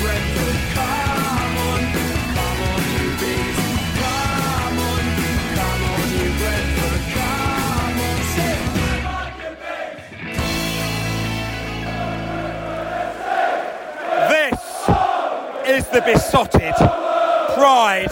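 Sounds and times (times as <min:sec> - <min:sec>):
football fans roaring in a stadium: 0:00.0 - 0:18.0
football fans yelling in a stadium: 0:11.5 - 0:18.0
speech: 0:16.0 - 0:17.0.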